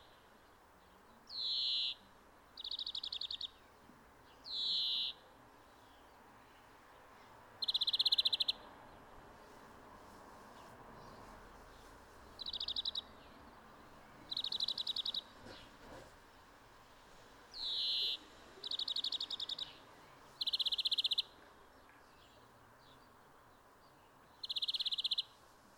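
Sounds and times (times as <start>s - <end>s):
European greenfinch Chloris chloris chattering trill bursts with wheezy note: 1.3s - 2.0s, 2.6s - 3.6s, 4.5s - 5.2s, 7.6s - 8.6s, 12.4s - 13.1s, 14.3s - 15.3s, 17.6s - 19.8s, 20.4s - 21.3s, 24.4s - 25.3s.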